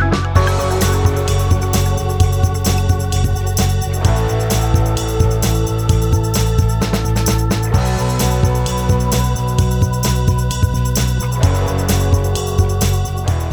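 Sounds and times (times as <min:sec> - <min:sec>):
130 bpm remix music: 0:00.1 - 0:13.5.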